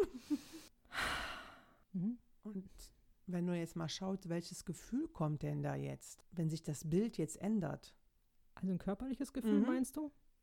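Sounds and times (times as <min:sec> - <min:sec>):
deep breath in and out: 0:00.4 - 0:01.8
speech: 0:02.6 - 0:08.0, 0:08.6 - 0:10.2.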